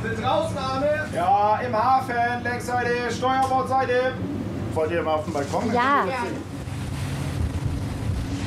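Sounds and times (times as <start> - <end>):
sea rescue cruiser's engine droning while under way: 0.0 - 8.4
water rushing along the hull of a sea rescue cruiser: 0.0 - 8.4
speech: 1.2 - 6.6
wind gusting across the microphone: 6.4 - 8.4.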